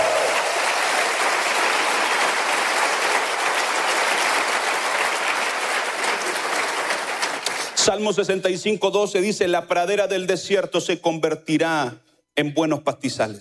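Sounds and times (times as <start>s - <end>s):
large congregation applauding: 0.0s - 7.8s
speech: 7.9s - 13.3s.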